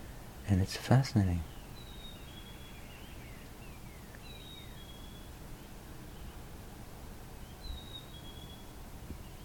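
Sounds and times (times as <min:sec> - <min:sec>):
outdoor hiss: 0:00.0 - 0:09.4
speech: 0:00.5 - 0:01.5
bird singing thin high whistled phrases: 0:01.5 - 0:05.3, 0:07.4 - 0:09.4.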